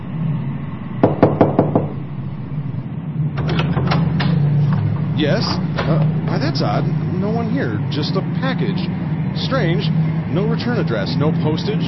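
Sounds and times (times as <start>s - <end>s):
steady low hum: 0.0s - 11.8s
sharp knocks on an apartment door: 1.0s - 2.0s
speech: 5.2s - 11.8s.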